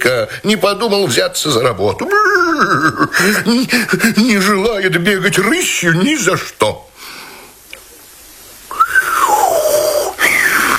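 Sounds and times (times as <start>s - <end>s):
speech: 0.1s - 6.8s
laughter: 2.0s - 3.7s
genie whistling a clear gliding note: 8.7s - 10.7s.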